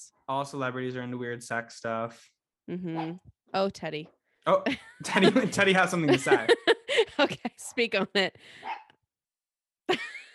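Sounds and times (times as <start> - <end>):
speech: 0.3 - 8.8
laughter: 4.7 - 8.4
dog barking: 8.6 - 8.9.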